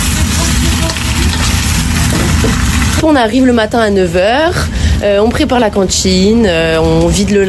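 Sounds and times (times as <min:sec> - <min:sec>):
potatoes sizzling while frying in a pan: 0:00.0 - 0:03.2
speech: 0:03.0 - 0:07.4.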